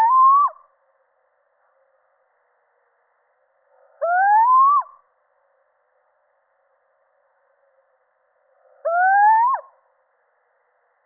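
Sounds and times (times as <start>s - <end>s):
male little owl hooting: 0.0s - 0.6s, 4.0s - 5.0s, 8.8s - 9.8s.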